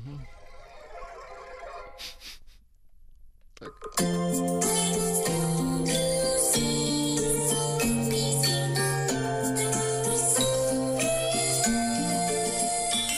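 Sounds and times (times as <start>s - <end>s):
speech: 3.6s - 4.6s
bright electronic pop song with vocaloid-style synthesized singing voice: 3.9s - 13.1s.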